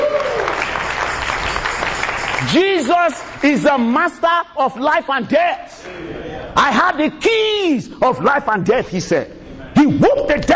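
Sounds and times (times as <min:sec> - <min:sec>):
audience at a church sermon clapping hands: 0:00.0 - 0:03.9
speech: 0:02.4 - 0:10.5.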